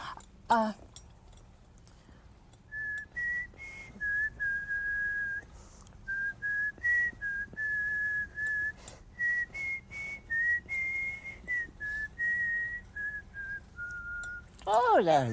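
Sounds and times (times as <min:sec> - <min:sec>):
low rumble: 0:00.0 - 0:15.3
speech: 0:00.5 - 0:00.8, 0:14.7 - 0:15.3
group of people whistling together: 0:02.7 - 0:05.5, 0:06.1 - 0:14.5.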